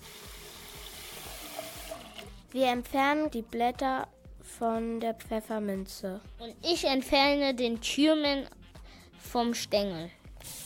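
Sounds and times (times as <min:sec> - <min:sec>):
water running from a tap into a cooking pot: 0:00.0 - 0:02.5
speech: 0:02.5 - 0:08.6, 0:09.3 - 0:10.2.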